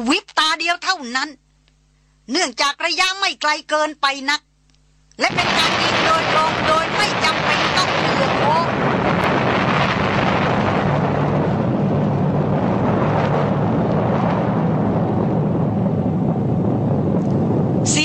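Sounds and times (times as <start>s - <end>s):
speech: 0.0s - 1.4s, 2.3s - 4.4s, 5.2s - 7.4s
loud thunderous explosion: 5.2s - 18.0s.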